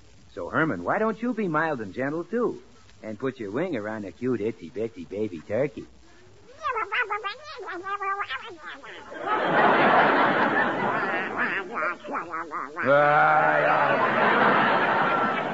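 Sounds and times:
speech: 0:00.4 - 0:06.0, 0:07.7 - 0:10.7, 0:11.4 - 0:14.8
voice imitating duck quacks: 0:06.2 - 0:09.3, 0:10.6 - 0:13.8
laughter: 0:08.2 - 0:15.5.

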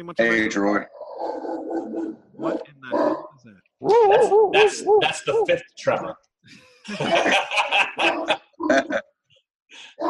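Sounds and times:
speech: 0:00.0 - 0:09.1
dog barking: 0:01.0 - 0:05.6, 0:07.0 - 0:08.4
faint laughter: 0:06.5 - 0:09.0.

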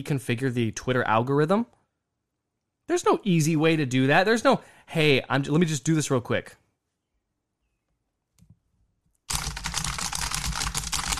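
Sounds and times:
speech: 0:00.0 - 0:01.8, 0:02.9 - 0:06.6
furious typing on a computer keyboard: 0:09.2 - 0:11.1.

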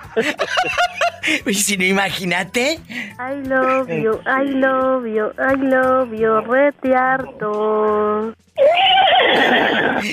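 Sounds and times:
laughter: 0:00.0 - 0:01.4, 0:09.2 - 0:10.1
speech: 0:00.2 - 0:10.1
horse neighing: 0:08.6 - 0:10.0.

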